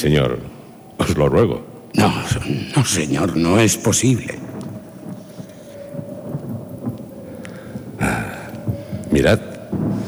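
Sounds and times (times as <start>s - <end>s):
speech: 0.0s - 4.7s, 9.2s - 9.5s
steady rain: 0.0s - 10.0s
thunder rumbling through a storm: 0.0s - 10.0s
sudden loud bright thunder crack: 2.0s - 10.0s.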